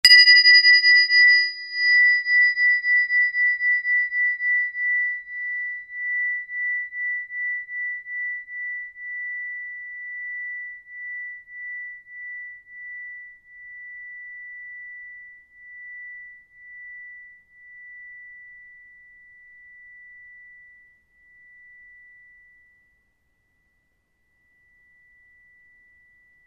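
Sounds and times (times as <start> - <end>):
triangle ringing: 0.0 - 8.6.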